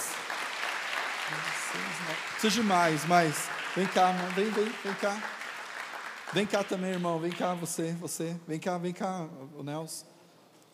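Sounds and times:
crowd applauding: 0.0s - 7.9s
speech: 1.3s - 5.4s, 6.3s - 10.2s.

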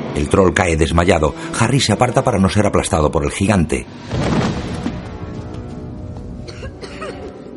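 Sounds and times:
speech: 0.1s - 4.4s
girl coughing from dust in a wrecked washroom: 6.5s - 7.3s.

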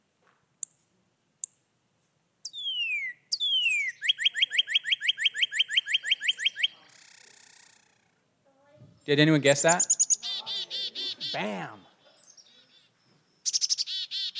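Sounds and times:
chickadee calling: 2.4s - 8.2s, 9.0s - 14.3s
speech: 9.1s - 10.0s, 11.3s - 11.8s.

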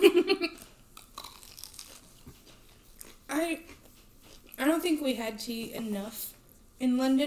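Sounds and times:
person chewing crunchy food: 0.6s - 4.8s
speech: 5.1s - 7.2s.

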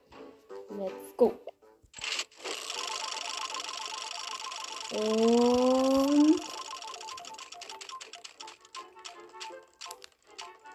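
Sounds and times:
speech: 0.7s - 1.5s, 4.9s - 5.6s
phone game prize wheel spinning with electronic ticks and bright tones: 2.5s - 10.6s.

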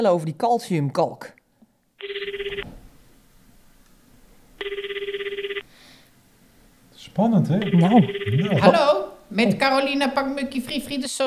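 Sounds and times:
speech: 0.0s - 1.4s, 7.1s - 11.2s
telephone ringing while placing a call: 2.0s - 2.7s, 4.6s - 5.7s, 7.6s - 8.8s.

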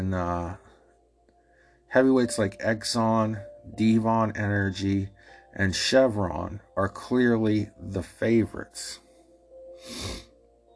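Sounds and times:
speech: 0.0s - 0.6s, 1.9s - 9.0s, 9.8s - 10.2s
sharp nasal sniff: 9.8s - 10.3s.

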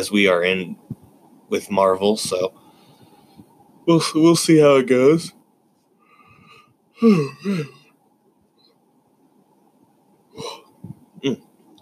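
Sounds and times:
speech: 0.0s - 0.8s, 1.5s - 2.6s, 3.9s - 5.4s, 7.0s - 7.8s, 11.2s - 11.4s
person yawning: 7.0s - 7.8s, 10.4s - 10.6s.

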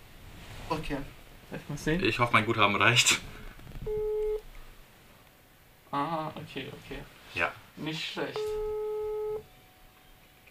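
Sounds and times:
speech: 0.7s - 4.1s, 5.9s - 8.7s
telephone ringing tone: 3.9s - 4.4s, 8.4s - 9.4s.

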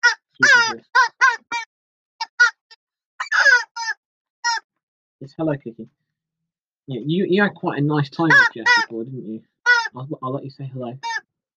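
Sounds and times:
parrot squawking: 0.0s - 4.6s, 8.2s - 8.9s, 9.7s - 10.0s, 11.0s - 11.2s
speech: 5.2s - 6.1s, 6.9s - 11.1s.

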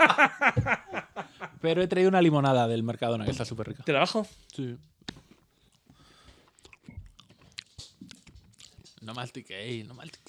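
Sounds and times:
speech: 0.0s - 0.8s, 1.6s - 4.9s, 9.0s - 10.2s
laughter: 0.0s - 1.6s
wet chewing with smacking mouth noises: 4.4s - 10.2s.

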